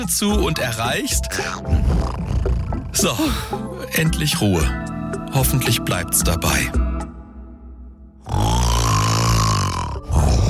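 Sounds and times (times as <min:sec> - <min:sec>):
speech: 0:00.0 - 0:07.0
loud rasping human snoring: 0:01.4 - 0:03.7, 0:08.2 - 0:10.4.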